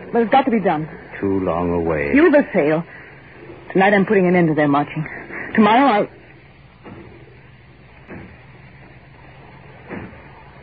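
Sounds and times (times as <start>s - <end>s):
speech: 0.1s - 3.0s, 3.7s - 6.2s
heavy thuds: 6.8s - 9.0s.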